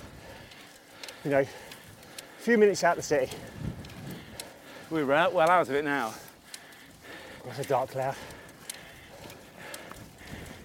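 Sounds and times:
cow hooves clopping on a hard country lane: 0.0 - 10.6
speech: 1.2 - 1.7, 2.4 - 3.7, 4.9 - 6.2, 7.4 - 8.4.

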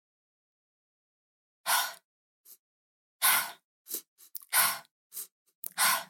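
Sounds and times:
rapid three-part breathing into belly and chest, out through the mouth: 1.7 - 2.6, 3.2 - 6.0.

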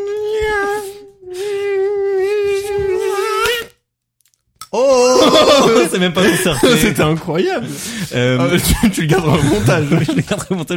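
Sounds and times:
person imitating a mosquito with a high-pitched buzzing hum: 0.0 - 3.7
laughter: 5.0 - 10.7
speech: 5.3 - 10.7.

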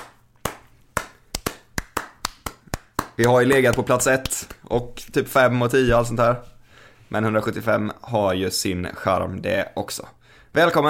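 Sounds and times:
hand clapping: 0.0 - 4.6
speech: 3.2 - 6.5, 7.1 - 10.8.

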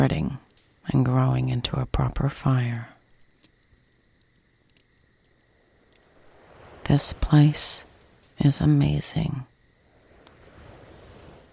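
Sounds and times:
speech: 0.0 - 3.0, 6.9 - 9.5
small brief clicks: 3.0 - 6.1
ocean surf: 5.8 - 11.5.

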